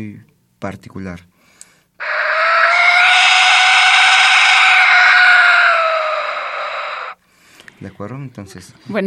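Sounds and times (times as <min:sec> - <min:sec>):
speech: 0:00.0 - 0:01.3, 0:07.8 - 0:09.0
Aztec death whistle being blown: 0:02.0 - 0:07.2.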